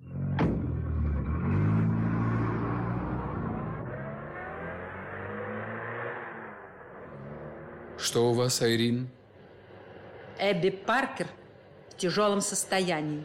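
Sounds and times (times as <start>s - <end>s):
car engine revving as the car pulls away: 0.0s - 8.7s
sharp thump: 0.4s - 0.8s
speech: 8.1s - 9.2s, 10.4s - 11.4s, 12.0s - 13.2s.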